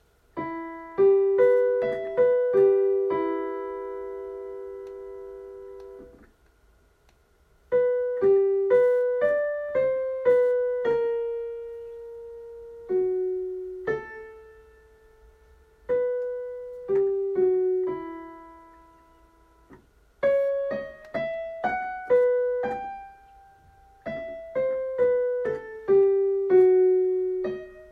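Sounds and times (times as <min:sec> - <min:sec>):
E minor music: 0:00.0 - 0:27.8.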